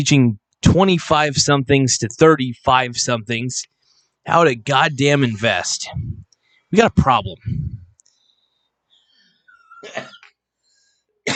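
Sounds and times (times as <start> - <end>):
speech: 0.0 - 7.8
harsh coughs: 9.6 - 10.2.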